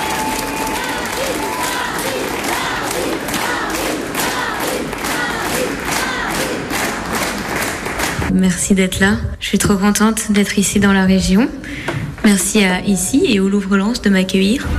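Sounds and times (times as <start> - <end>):
scattered cheers and shouts from a crowd: 0.0 - 7.4
crowd murmur: 0.0 - 8.3
sustained applause from a large audience at an afternoon event: 0.0 - 8.3
speech: 8.4 - 14.7.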